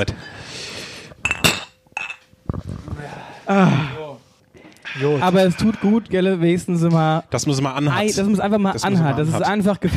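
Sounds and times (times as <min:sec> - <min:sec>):
glasses clinking in a toast: 0:01.2 - 0:02.3
speech: 0:05.0 - 0:09.9.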